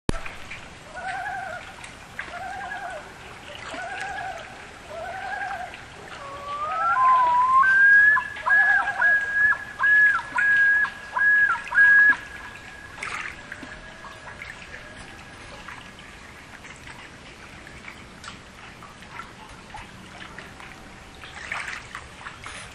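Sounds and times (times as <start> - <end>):
loon: 0.9 - 15.2.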